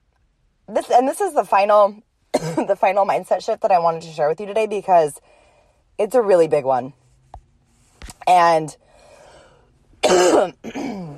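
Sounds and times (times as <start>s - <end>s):
speech: 0.7s - 5.4s, 6.0s - 7.0s, 8.3s - 8.8s, 10.1s - 11.0s
coughing and throat clearing: 2.3s - 2.7s, 10.0s - 11.1s.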